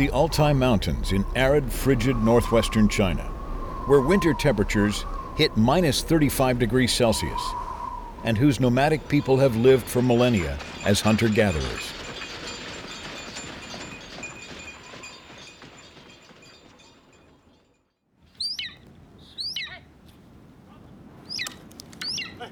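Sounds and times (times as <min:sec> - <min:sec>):
speech: 0:00.0 - 0:03.3, 0:03.9 - 0:07.6, 0:08.2 - 0:12.0
steady rushing noise: 0:00.0 - 0:16.5
trained five-year-old golden eagle giving sharp high-pitched yelping cries: 0:21.3 - 0:22.5.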